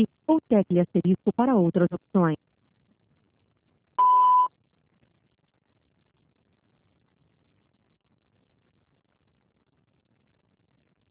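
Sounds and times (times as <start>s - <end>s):
speech: 0.0s - 2.5s
voicemail beep before a message is recorded: 4.0s - 4.5s.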